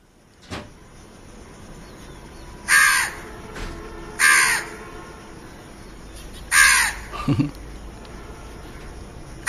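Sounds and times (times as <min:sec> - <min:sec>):
house crow cawing: 0:02.7 - 0:03.2, 0:04.2 - 0:04.8, 0:06.5 - 0:07.4.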